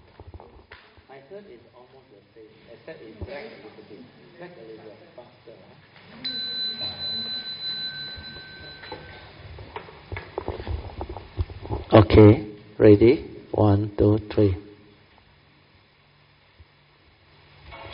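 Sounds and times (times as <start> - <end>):
speech: 1.2 - 6.5, 11.9 - 14.6
people chattering: 6.1 - 8.9
bell struck with a clear high ringing tone: 6.2 - 9.4.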